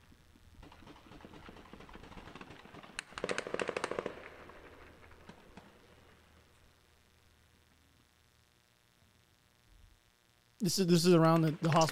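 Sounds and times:
gunfire during a military raid toward a refugee camp: 0.6s - 5.9s
speech: 10.6s - 11.9s.

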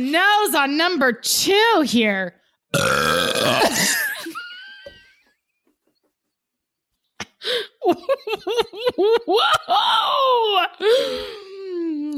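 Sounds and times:
speech: 0.0s - 4.0s, 7.4s - 12.0s
long loud rumbling burp: 2.7s - 4.0s
laughter: 7.8s - 9.5s.

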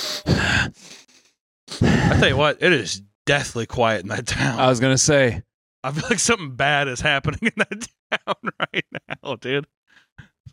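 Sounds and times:
heavy drunken ragged breathing: 0.0s - 2.3s
speech: 2.1s - 9.8s
laughter: 7.2s - 9.6s.

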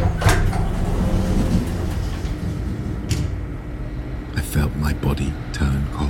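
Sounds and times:
heavy metal lift doors creaking and sliding open: 0.0s - 3.8s
low mechanical rumble: 0.0s - 6.0s.

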